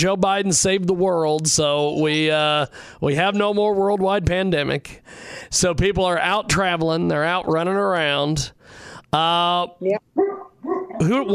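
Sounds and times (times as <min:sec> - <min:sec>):
speech: 0:00.0 - 0:11.3
dog barking: 0:10.2 - 0:11.2.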